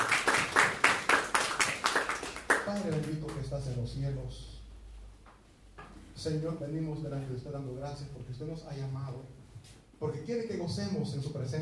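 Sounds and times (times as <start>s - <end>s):
crowd applauding in a steady rhythm: 0.0s - 3.4s
speech: 2.8s - 4.6s, 6.2s - 9.4s, 10.0s - 11.6s.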